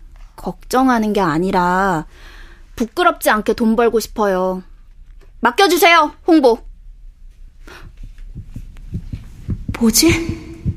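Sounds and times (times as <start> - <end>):
speech: 0.4 - 4.7, 5.4 - 6.7, 9.8 - 10.4
low heartbeat thumps: 7.7 - 10.7.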